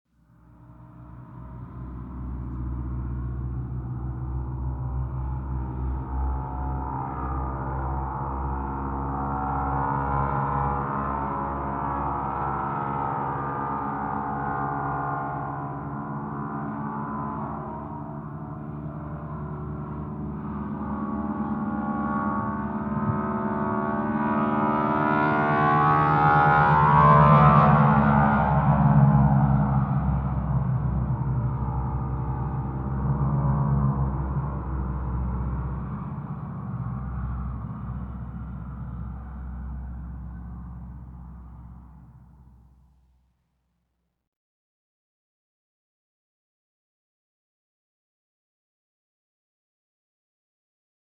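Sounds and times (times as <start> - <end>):
aircraft passing by at an airfield hangar: 0.4 - 42.2.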